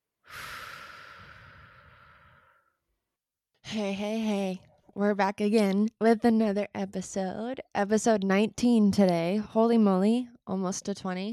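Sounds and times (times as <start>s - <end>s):
slow deep breath during a guided breathing moment: 0.2s - 2.8s
speech: 3.7s - 11.3s.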